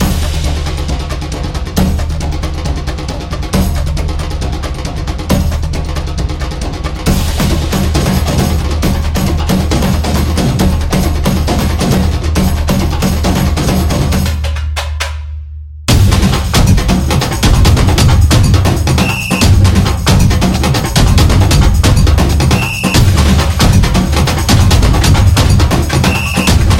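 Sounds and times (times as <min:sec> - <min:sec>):
samba drums: 0:00.0 - 0:15.3, 0:15.9 - 0:26.7.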